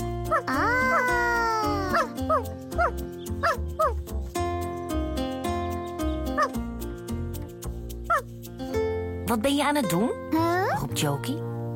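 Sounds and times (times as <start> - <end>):
cheerful music: 0.0 - 11.7
small dog yapping with high-pitched barks and whiny yelps: 1.9 - 4.0, 8.1 - 8.3
speech: 9.3 - 11.5.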